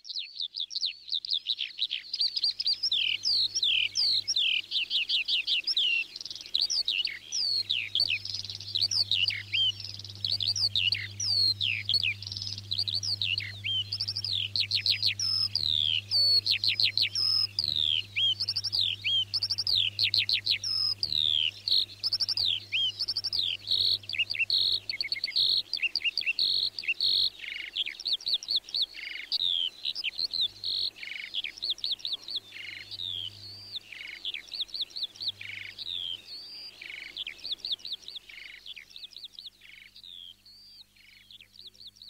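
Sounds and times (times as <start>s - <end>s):
skylark twittering warble: 0.0s - 42.0s
low steady hum: 6.3s - 25.8s, 32.4s - 33.9s.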